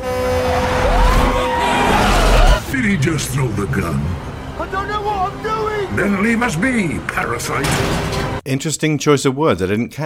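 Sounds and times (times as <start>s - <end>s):
truck horn blaring: 0.0s - 2.1s, 4.0s - 7.0s
road noise: 0.0s - 8.4s
truck engine rumbling: 0.5s - 8.4s
speech: 3.0s - 10.0s.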